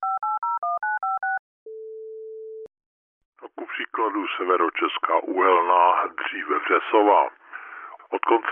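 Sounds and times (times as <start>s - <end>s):
touch-tone beeps of a telephone being dialed: 0.0s - 2.6s
speech: 3.6s - 7.4s, 8.2s - 8.5s.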